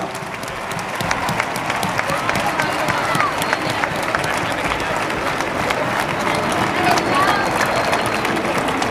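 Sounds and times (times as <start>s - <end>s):
faint indistinct crowd voices: 0.0s - 8.9s
large audience applauding: 0.0s - 8.9s.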